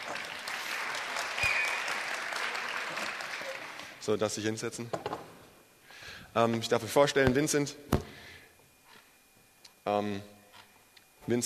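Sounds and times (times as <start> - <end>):
audience clapping: 0.0 - 4.1
speech: 4.0 - 5.4, 6.3 - 8.0, 9.9 - 10.4, 11.2 - 11.4.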